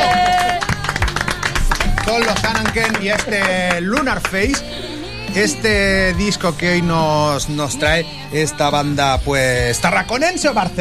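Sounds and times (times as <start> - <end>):
crowd applause: 0.0 - 4.6
speech: 2.1 - 10.7.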